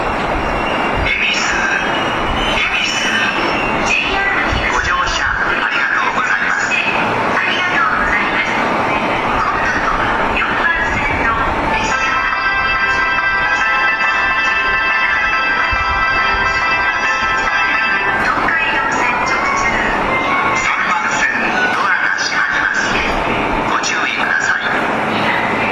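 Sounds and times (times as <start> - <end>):
station departure melody at Ebisu Station on the Saikyo and Shonan-Shinjuku lines: 0.0 - 25.7.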